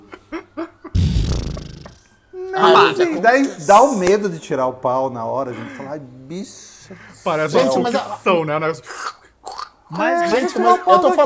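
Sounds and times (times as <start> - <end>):
wet sputtering fart imitation blown with the mouth: 1.0 - 2.1
speech: 2.6 - 9.2, 9.9 - 11.2.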